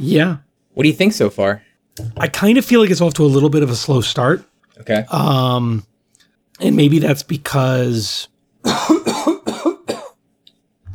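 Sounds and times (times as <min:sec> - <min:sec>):
speech: 0:00.0 - 0:05.9, 0:06.6 - 0:09.4
low throat clearing from a dry throat: 0:08.6 - 0:10.2
person coughing from a dry throat: 0:08.6 - 0:10.2.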